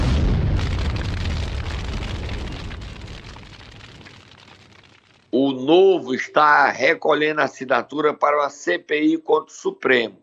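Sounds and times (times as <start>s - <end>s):
MOAB bomb explosion sound effect: 0.0s - 5.4s
speech: 5.6s - 10.2s.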